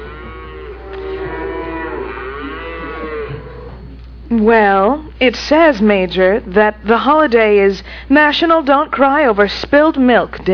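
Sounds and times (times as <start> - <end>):
cow mooing: 0.0 - 3.8
faint steady hum: 0.0 - 10.5
speech: 4.3 - 10.5.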